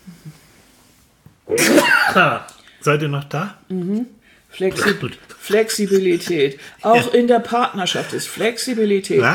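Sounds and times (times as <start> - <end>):
person sneezing: 1.5 - 2.5, 4.7 - 5.1
speech: 1.5 - 9.3.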